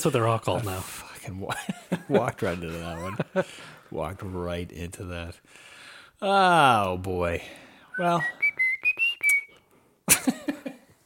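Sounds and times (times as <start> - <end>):
speech: 0.0 - 8.4
person whistling a short tune: 7.9 - 9.7.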